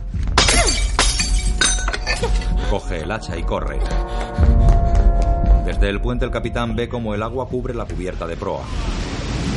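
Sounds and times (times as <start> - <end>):
fire cabinet glass case smashed with a metal fire hose nozzle: 0.3 - 2.4
glass shards tinkling and scattering: 0.4 - 2.4
speech: 2.2 - 4.6, 5.7 - 9.5.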